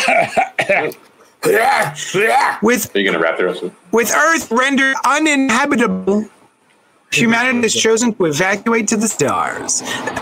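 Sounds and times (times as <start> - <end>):
person clearing throat: 0.0 - 2.2
speech: 0.1 - 6.4, 7.1 - 10.1.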